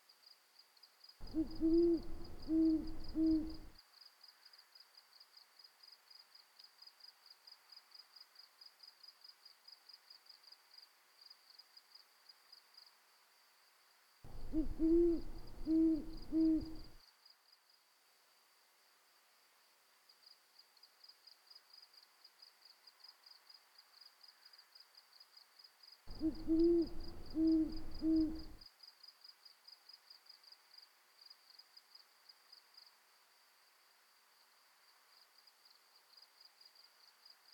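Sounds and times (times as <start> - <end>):
crickets chirping outside at night: 1.2 - 3.7, 14.3 - 17.0, 26.1 - 28.6
owl hooting at night: 1.2 - 3.7, 14.3 - 17.0, 26.1 - 28.6.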